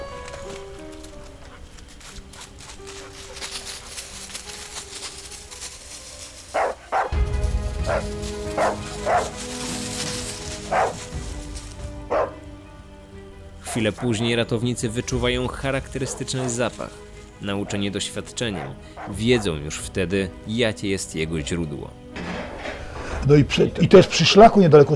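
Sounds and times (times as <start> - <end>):
search dog barking: 6.5 - 7.1, 7.9 - 9.4, 10.6 - 11.1, 12.1 - 12.4, 18.5 - 19.5
speech: 13.8 - 22.1, 23.3 - 24.9.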